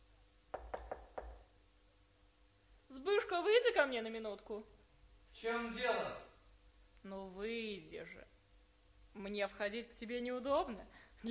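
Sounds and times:
sharp knocks on a wooden door: 0.5 - 1.5
speech: 3.0 - 4.8, 5.4 - 6.3, 7.0 - 8.3, 9.2 - 11.3.

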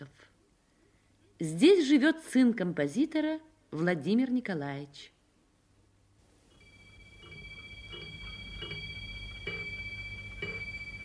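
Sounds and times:
speech: 1.4 - 5.1
low hum: 6.2 - 11.0
antique clock striking chimes in an apartment study: 6.5 - 11.0.

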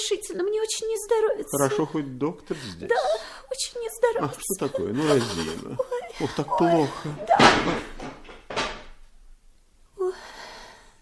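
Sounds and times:
speech: 0.1 - 8.2
laughter: 4.2 - 8.0
wooden chair knocked over: 7.1 - 9.0.

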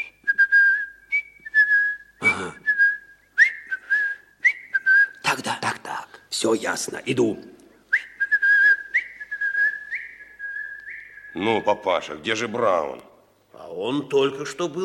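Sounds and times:
man whistling a short tune: 0.0 - 5.2, 7.9 - 11.8
speech: 6.4 - 7.5, 11.4 - 13.1, 13.7 - 14.8.

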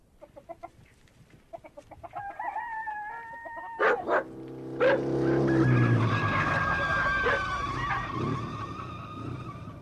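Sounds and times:
official motorcycle delivering a telegram approaching a village hut: 3.3 - 9.8
motorcycle tires screeching in a long loud skid: 4.4 - 9.8.

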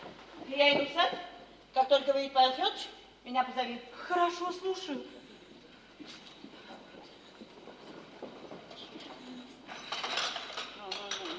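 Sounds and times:
speech: 0.5 - 5.2
teacups clinking and rattling together: 9.7 - 11.3.

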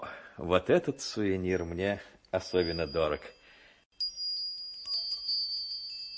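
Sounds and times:
speech: 0.4 - 3.4
small Valdai harness bells ringing: 2.4 - 6.1.

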